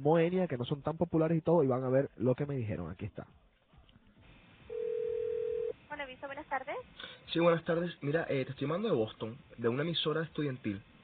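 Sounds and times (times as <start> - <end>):
speech: 0.0 - 3.4, 6.2 - 10.9
ringback tone over a phone line: 4.7 - 5.8.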